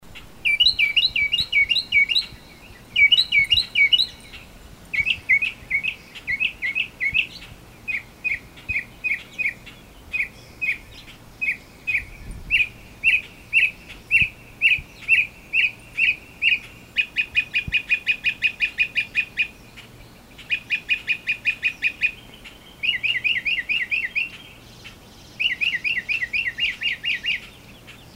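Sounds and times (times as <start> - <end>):
Northern Mockingbird Mimus polyglottos polyglottos: 0.1 - 28.1.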